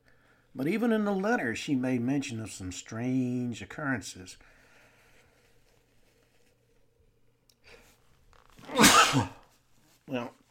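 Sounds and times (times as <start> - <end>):
speech: 0.6 - 4.5, 10.1 - 10.4
loud sneeze: 8.6 - 9.5.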